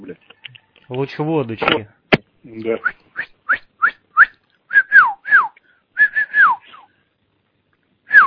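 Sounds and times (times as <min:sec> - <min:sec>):
speech: 0:00.0 - 0:03.0
person whistling a tune in clear high notes: 0:02.8 - 0:06.9, 0:08.1 - 0:08.2.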